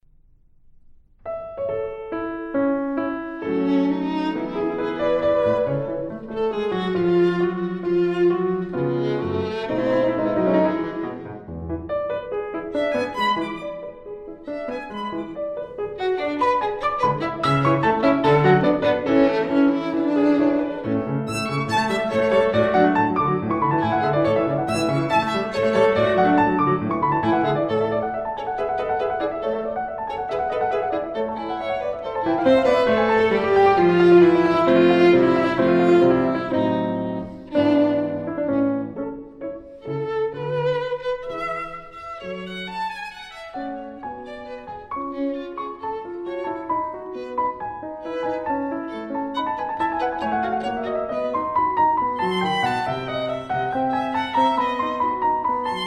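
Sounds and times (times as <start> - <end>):
piano in a violin sonata: 0.0 - 55.8
violin in a sonata in A major: 2.4 - 55.8.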